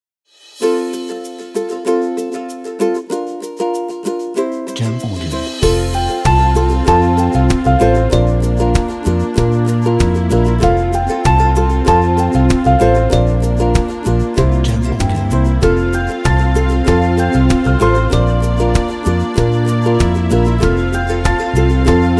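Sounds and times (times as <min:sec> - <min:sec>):
upbeat family summer music: 0:00.6 - 0:22.1.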